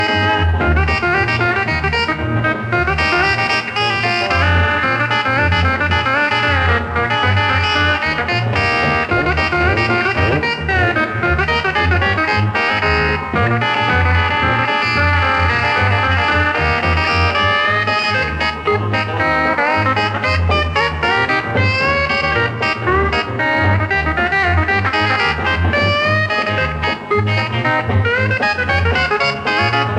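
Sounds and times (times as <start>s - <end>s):
live steel guitar polka: 0.0s - 29.9s.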